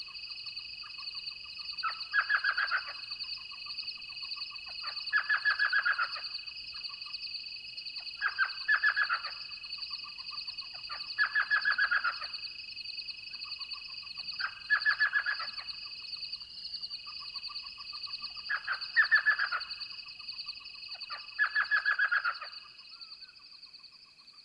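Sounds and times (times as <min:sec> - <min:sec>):
elf owl yelping calls at night: 0:01.8 - 0:03.0, 0:04.7 - 0:06.3, 0:08.2 - 0:09.4, 0:10.8 - 0:12.3, 0:14.4 - 0:15.7, 0:17.2 - 0:19.8, 0:21.0 - 0:23.1.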